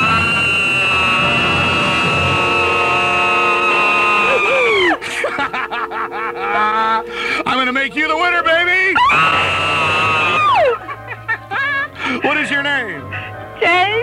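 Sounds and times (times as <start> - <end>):
crowd screaming: 0.0 - 7.2, 9.0 - 12.6
laughter: 3.3 - 8.3, 9.0 - 14.0.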